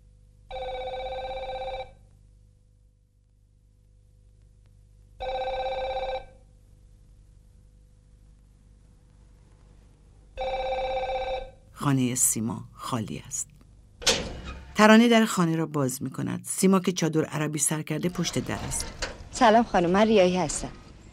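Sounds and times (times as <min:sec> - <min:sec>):
telephone ringing after a number is dialled: 0:00.5 - 0:02.0, 0:05.2 - 0:06.4, 0:10.4 - 0:11.6
speech: 0:11.9 - 0:13.5, 0:14.8 - 0:20.8.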